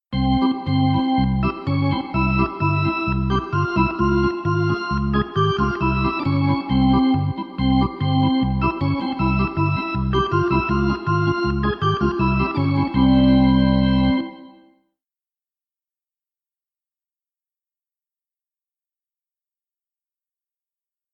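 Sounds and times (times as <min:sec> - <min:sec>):
arena organ music: 0:00.1 - 0:14.7.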